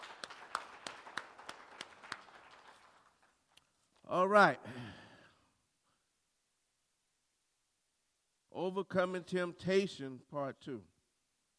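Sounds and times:
crowd applauding: 0.0s - 3.5s
speech: 4.1s - 4.8s, 8.7s - 10.9s.

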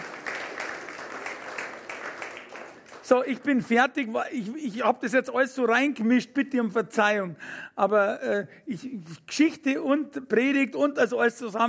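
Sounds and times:
audience clapping: 0.0s - 3.7s
speech: 3.1s - 11.6s.

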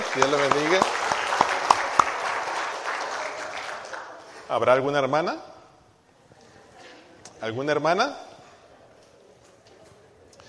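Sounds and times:
crowd applauding after a recitation: 0.0s - 4.5s
speech: 0.2s - 1.1s, 4.5s - 5.5s, 7.4s - 8.2s.

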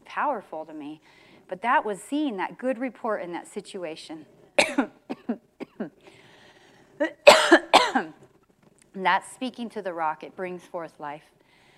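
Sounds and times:
speech: 0.2s - 6.0s, 9.0s - 11.4s
short dry tickle coughs and harsher hacking coughs: 4.6s - 6.0s, 7.0s - 8.2s.

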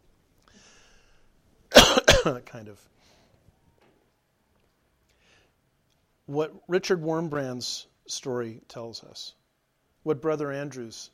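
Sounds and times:
loud cough close to the microphone: 1.7s - 2.4s
speech: 2.2s - 3.1s, 6.3s - 9.4s, 10.0s - 11.1s.

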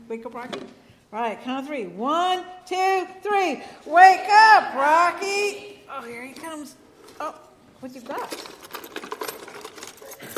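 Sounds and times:
speech: 0.1s - 8.6s
bunch of house keys jangling: 8.1s - 10.3s.

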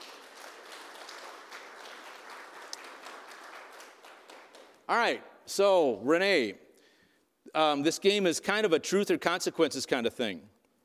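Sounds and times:
audience applause: 0.0s - 4.8s
speech: 4.9s - 6.6s, 7.6s - 10.5s.

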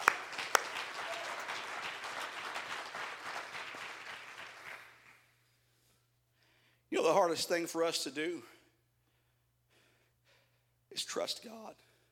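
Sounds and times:
crowd applause: 0.0s - 5.2s
speech: 7.0s - 8.5s, 11.0s - 11.9s.

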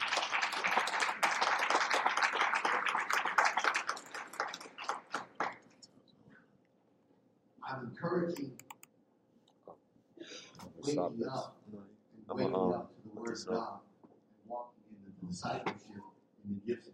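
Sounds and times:
audience applauding: 0.0s - 5.8s
speech: 8.0s - 8.7s, 10.9s - 11.6s, 12.3s - 13.8s, 15.3s - 16.0s, 16.7s - 16.9s.

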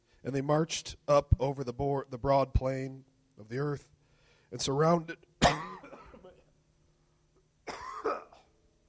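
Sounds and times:
speech: 0.2s - 5.6s
person with a scratchy throat clearing their throat: 5.4s - 6.5s, 7.6s - 8.6s
person with a scratchy throat coughing harshly: 5.4s - 6.5s, 7.6s - 8.6s.

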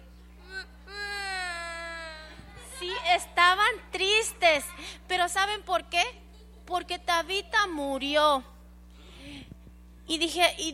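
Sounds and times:
low steady hum: 0.0s - 10.7s
children pretending to cry: 0.4s - 3.6s
speech: 4.3s - 8.5s, 10.1s - 10.7s.

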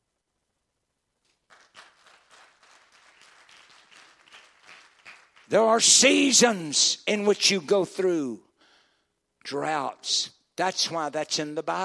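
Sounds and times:
audience clapping: 1.3s - 5.9s
speech: 5.5s - 8.5s, 9.5s - 11.8s.

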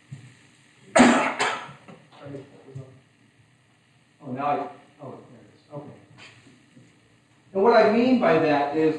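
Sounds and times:
person coughing: 1.0s - 1.8s
speech: 2.3s - 2.9s, 4.4s - 5.2s, 7.6s - 8.9s.

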